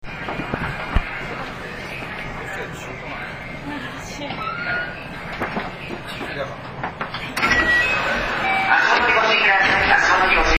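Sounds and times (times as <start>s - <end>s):
223 series 3000 train door opening and closing with rattling: 4.4s - 10.1s.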